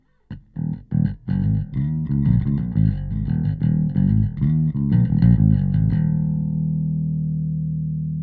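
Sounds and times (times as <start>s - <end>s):
warm dark bass guitar: 0.3s - 8.2s.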